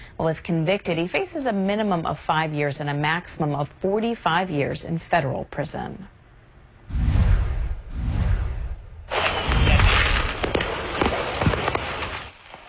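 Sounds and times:
speech: 0:00.2 - 0:06.2
deep rumbling booms of fireworks on a trailer: 0:06.9 - 0:10.6
sustained barrage of sharp crackles and pops: 0:09.1 - 0:12.6.

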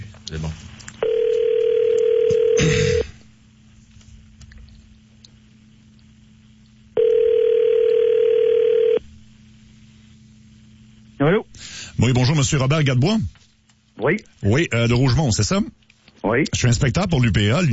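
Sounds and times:
speech: 0:00.3 - 0:00.8, 0:12.1 - 0:13.4, 0:14.0 - 0:17.7
telephone line tone while a call is placed: 0:01.0 - 0:03.0, 0:07.0 - 0:09.0.

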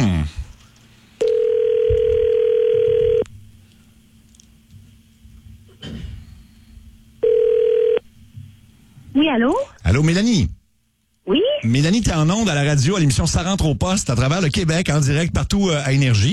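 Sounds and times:
steady telephone dial tone in a studio: 0:01.2 - 0:03.2, 0:07.2 - 0:08.0
speech: 0:09.4 - 0:10.6, 0:11.3 - 0:16.3.

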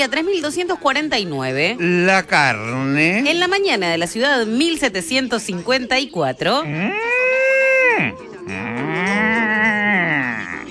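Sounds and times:
speech: 0:00.0 - 0:07.1
cow mooing: 0:06.6 - 0:10.6.

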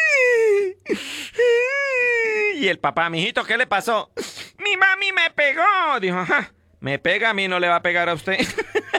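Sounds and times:
child crying: 0:00.0 - 0:02.6
speech: 0:02.6 - 0:08.9.

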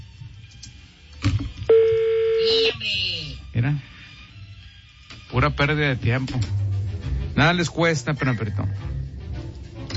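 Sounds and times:
repaired telephone ringing: 0:01.7 - 0:02.8
speech: 0:02.5 - 0:03.9, 0:05.4 - 0:06.6, 0:07.4 - 0:09.0.

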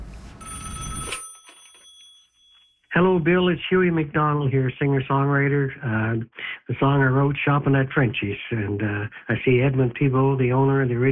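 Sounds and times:
telephone bell ringing: 0:00.4 - 0:03.0
speech: 0:03.0 - 0:11.0.

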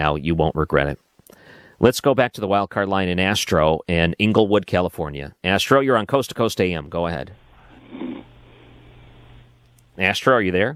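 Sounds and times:
speech: 0:00.0 - 0:08.1, 0:10.0 - 0:10.7
phone line hiss: 0:07.4 - 0:09.8
person snoring over a phone line: 0:07.5 - 0:09.6.

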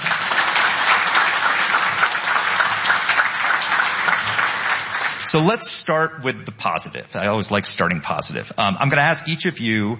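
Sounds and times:
audience applause at a panel event: 0:00.0 - 0:05.5
speech: 0:05.3 - 0:09.9.

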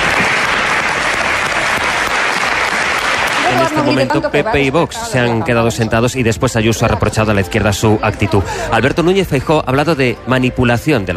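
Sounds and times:
opposition applauding in a parliament chamber in Madrid: 0:00.0 - 0:04.4
speech: 0:03.8 - 0:11.1.

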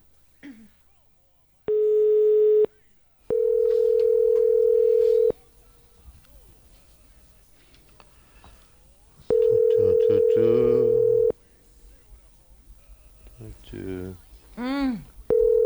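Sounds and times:
faint talk: 0:00.0 - 0:15.6
voices speaking: 0:00.4 - 0:15.6
ringback tone of an unanswered telephone call: 0:01.7 - 0:02.7, 0:03.3 - 0:05.3, 0:09.3 - 0:11.3, 0:15.3 - 0:15.6.

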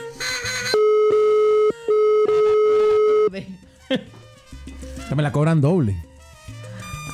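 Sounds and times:
telephone call tone while a call is placed: 0:00.0 - 0:03.3
speech: 0:03.9 - 0:04.1, 0:05.1 - 0:06.1.

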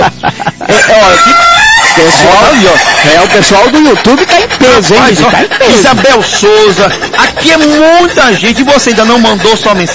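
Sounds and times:
laughter: 0:00.0 - 0:09.9
mechanical rooster crowing sound effect: 0:00.7 - 0:03.4
speech: 0:02.1 - 0:09.9.

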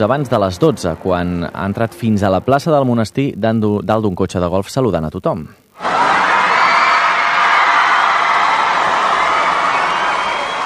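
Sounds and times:
speech: 0:00.0 - 0:05.6
crowd of children shouting and cheering with excitement in an abbey square: 0:05.8 - 0:10.6.

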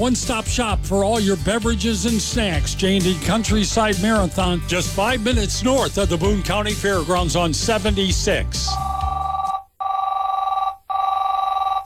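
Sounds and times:
speech: 0:00.0 - 0:08.9
telephone ringing with a warbling electronic trill: 0:08.7 - 0:11.8.

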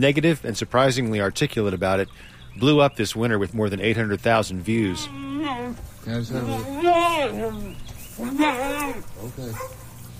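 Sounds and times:
speech: 0:00.0 - 0:09.8
mule braying: 0:04.7 - 0:09.8.

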